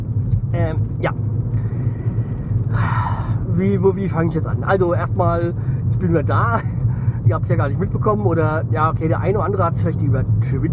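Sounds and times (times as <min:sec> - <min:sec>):
road rumble inside a moving car: 0:00.0 - 0:10.7
speech: 0:00.5 - 0:01.3, 0:03.6 - 0:10.7
breathy vocal sounds: 0:01.5 - 0:03.5.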